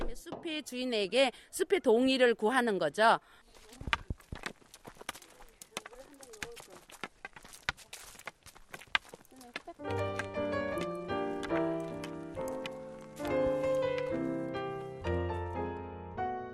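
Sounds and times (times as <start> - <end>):
faint outdoor sounds in a forest: 0.0 - 15.8
walking stick tapping forest ground as a ritual while walking: 3.5 - 15.0
footsteps on forest ground: 3.5 - 15.6.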